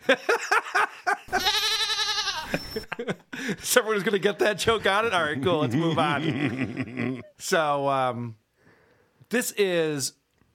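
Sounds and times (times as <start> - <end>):
laughter: 0.0 - 7.4
speech: 0.1 - 0.5, 3.7 - 8.4, 9.3 - 10.2
goat bleat sound effect: 1.3 - 2.7.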